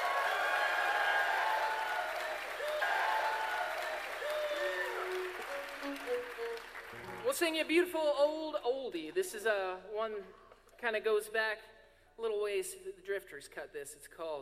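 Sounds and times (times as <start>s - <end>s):
audience applause: 0.0s - 7.3s
whistles from an audience: 0.2s - 7.0s
speech: 7.3s - 14.4s.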